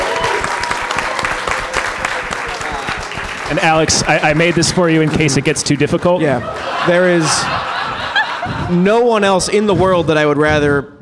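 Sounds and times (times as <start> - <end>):
small group clapping: 0.0 - 7.9
laughter: 1.4 - 10.1
speech: 3.5 - 7.7, 8.4 - 11.0.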